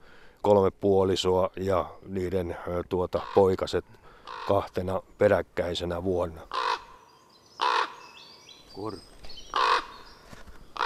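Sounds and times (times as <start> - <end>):
speech: 0.4 - 6.6, 8.8 - 9.6
common raven croaking: 3.1 - 4.8, 6.3 - 8.2, 9.5 - 10.1.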